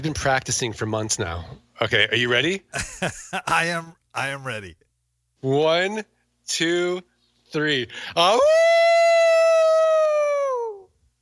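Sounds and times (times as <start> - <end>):
speech: 0.0 - 4.8, 5.4 - 8.8
person imitating a howl: 8.3 - 10.9.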